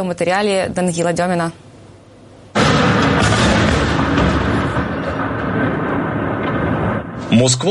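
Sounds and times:
speech: 0:00.0 - 0:01.7, 0:07.3 - 0:07.6
loud explosion during a night attack on Moscow: 0:02.5 - 0:07.6
heavy continuous roar and rumble: 0:02.6 - 0:07.3.

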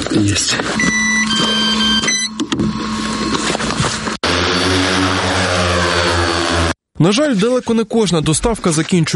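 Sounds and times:
speech: 0:00.2 - 0:01.6, 0:07.0 - 0:09.1
heavy bomber drone propellers buzzing: 0:00.8 - 0:06.8.

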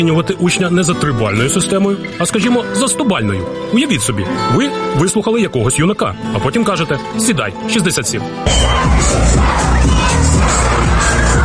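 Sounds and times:
speech: 0:00.0 - 0:10.0
dense crowd of children shouting and cheering: 0:08.4 - 0:11.4.

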